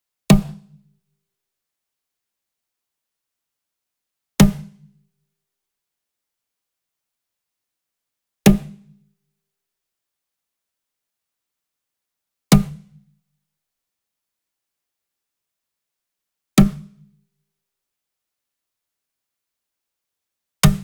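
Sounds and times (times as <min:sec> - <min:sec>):
mounted wood drum hit with whip: 0:00.3 - 0:00.6, 0:16.6 - 0:16.9, 0:20.6 - 0:20.8.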